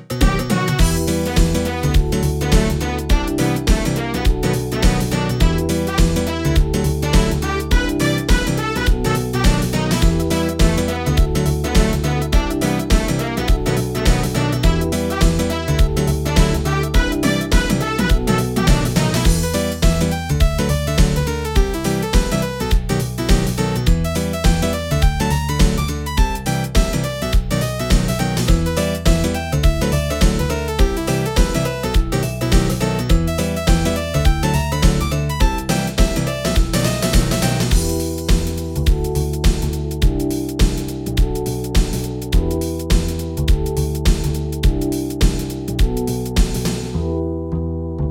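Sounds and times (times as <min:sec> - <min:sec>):
Korg M01 synthesizer jam: 0:00.1 - 0:48.0.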